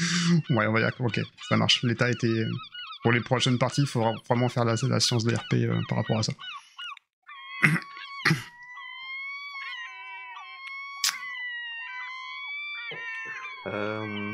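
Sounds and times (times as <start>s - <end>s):
seagulls crying in long wavering high-pitched wails: 0.0s - 14.3s
speech: 0.3s - 6.6s, 7.6s - 8.5s
lower voice-like sound: 12.9s - 14.3s.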